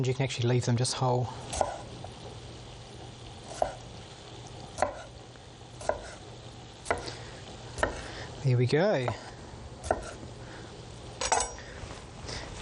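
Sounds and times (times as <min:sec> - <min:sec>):
speech: 0:00.0 - 0:01.9, 0:08.4 - 0:09.3
low hum: 0:00.0 - 0:12.6
knife chopping cherry tomatoes in half: 0:01.5 - 0:01.9, 0:03.5 - 0:03.8, 0:04.8 - 0:05.1, 0:05.8 - 0:06.2, 0:06.8 - 0:07.1, 0:07.8 - 0:08.1, 0:09.1 - 0:10.2.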